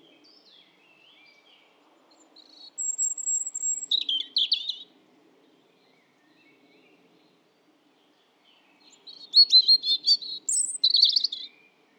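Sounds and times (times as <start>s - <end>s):
European robin Erithacus rubecula singing: 2.6s - 4.9s, 8.9s - 11.5s.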